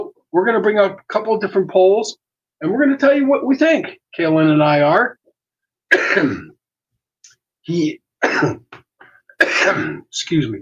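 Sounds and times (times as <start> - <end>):
speech: 0.0 - 5.2, 5.9 - 6.5, 7.7 - 8.8, 9.6 - 10.6
loud coughs: 5.9 - 6.6, 8.2 - 8.7, 9.3 - 10.1
throat-clearing rasps: 5.9 - 6.6, 8.2 - 10.1.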